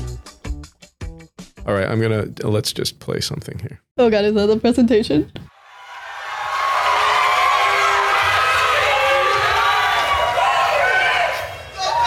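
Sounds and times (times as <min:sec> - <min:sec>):
speech: 0:01.6 - 0:05.5
large crowd cheering: 0:05.5 - 0:12.0
people whooping: 0:05.6 - 0:12.0.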